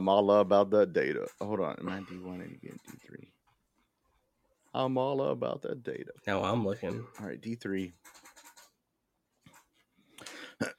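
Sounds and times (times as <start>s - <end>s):
speech: 0.0s - 3.3s, 4.7s - 8.3s, 10.6s - 10.7s
person clearing throat into a microphone: 1.8s - 2.4s, 10.3s - 10.7s.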